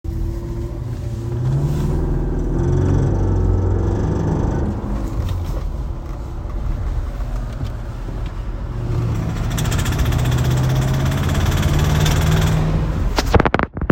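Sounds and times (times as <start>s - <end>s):
2010 RR SC engine running: 0.0s - 13.4s
2010 RR SC engine knocking: 9.2s - 12.7s.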